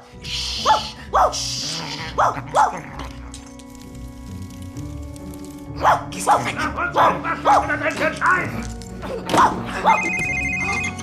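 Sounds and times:
sharp barking: 0.6s - 1.4s, 2.1s - 2.9s, 5.8s - 7.8s
speech: 2.2s - 2.8s, 5.8s - 11.0s
mobile phone ringing: 9.9s - 11.0s.

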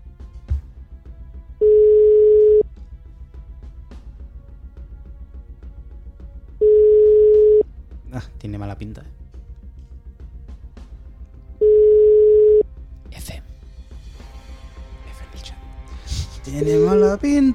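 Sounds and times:
phone ringback tone: 1.6s - 2.6s, 6.6s - 7.6s, 11.6s - 12.6s
speech: 8.4s - 9.2s, 16.5s - 17.5s.

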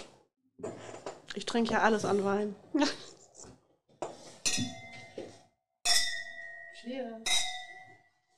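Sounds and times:
speech: 1.4s - 3.2s
glassware clattering while being handled: 4.4s - 8.1s
wine glasses clinking in a toast: 4.5s - 5.3s, 5.9s - 8.0s.

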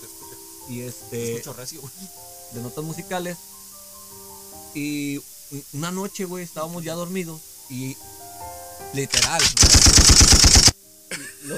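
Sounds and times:
speech: 0.7s - 3.5s, 4.7s - 8.2s, 8.9s - 10.6s
rapid burst of gunshots like automatic fire at night: 9.1s - 10.7s.

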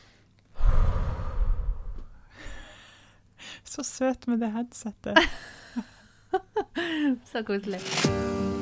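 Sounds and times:
deep belly breathing: 0.0s - 3.2s
speech: 3.8s - 5.9s, 7.1s - 8.5s.

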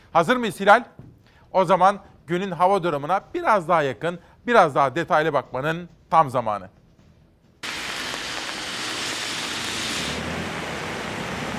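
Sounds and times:
speech: 0.2s - 6.8s
steady rain pouring: 7.6s - 11.5s.

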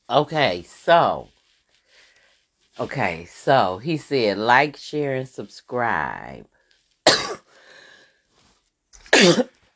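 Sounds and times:
speech: 0.1s - 1.3s, 2.8s - 6.5s, 9.2s - 9.5s
person coughing close to the mic: 7.1s - 7.4s, 9.1s - 9.5s
quiet wheezy intake of breath: 7.4s - 8.1s.

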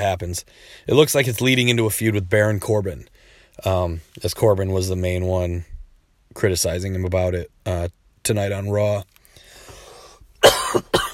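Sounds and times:
speech: 0.0s - 5.7s, 6.3s - 9.1s, 10.4s - 10.9s
person coughing: 10.4s - 11.1s.

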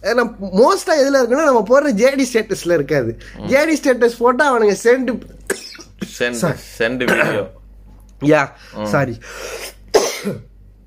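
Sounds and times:
speech: 0.0s - 5.6s, 6.2s - 7.6s, 8.2s - 10.5s
harsh cough: 5.5s - 6.2s, 7.0s - 7.6s, 9.6s - 10.5s
raspy breath: 8.6s - 9.8s.

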